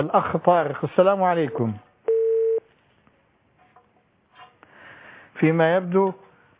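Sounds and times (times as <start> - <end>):
speech: 0.0 - 1.9, 5.4 - 6.2
telephone line tone after a cut-off call: 2.1 - 2.6.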